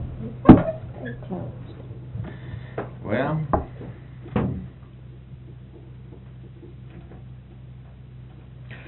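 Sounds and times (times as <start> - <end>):
door slamming shut: 0.4 - 0.8
soft knocks and rattles: 1.7 - 8.5.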